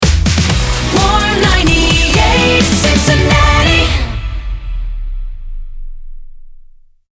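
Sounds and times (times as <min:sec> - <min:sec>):
128bpm jingle in D: 0:00.5 - 0:05.1.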